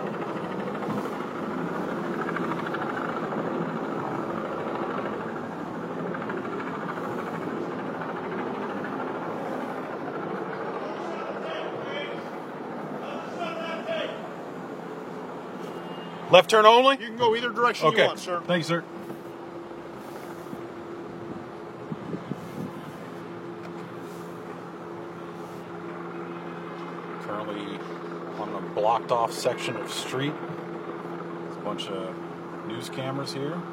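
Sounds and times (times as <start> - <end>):
helicopters flying overhead: 0.0 - 33.7
indistinct voices: 13.0 - 14.4
speech: 16.3 - 19.0, 29.1 - 30.5, 31.7 - 33.7.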